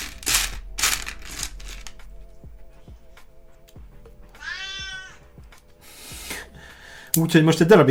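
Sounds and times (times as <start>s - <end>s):
crinkly rustling: 0.0s - 2.0s
cat meowing as it walks away: 4.4s - 5.3s
speech: 7.1s - 7.8s.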